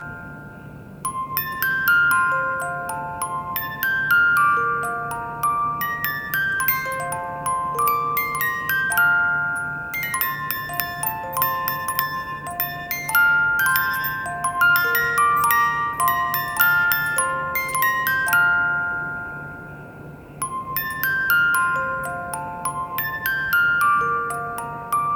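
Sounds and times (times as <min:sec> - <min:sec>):
music box playing a Christmas song: 0:00.0 - 0:25.1.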